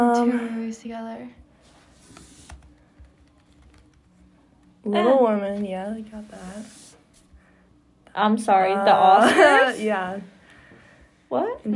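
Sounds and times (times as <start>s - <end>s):
speech: 0.0s - 1.4s, 4.8s - 6.8s, 8.2s - 10.3s, 11.3s - 11.7s
low steady hum: 0.0s - 11.7s
one-handed typing on a computer keyboard: 2.5s - 4.1s.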